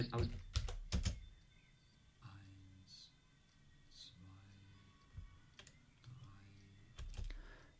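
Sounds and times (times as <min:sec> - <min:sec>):
speech: 0:00.0 - 0:00.5
computer keyboard key presses including the Escape key: 0:00.3 - 0:01.3, 0:07.0 - 0:07.4.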